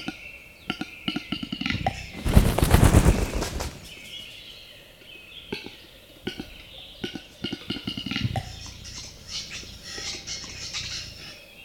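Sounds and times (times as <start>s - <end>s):
western capercaillie scratchy grinding whetting phrases: 2.0s - 4.0s.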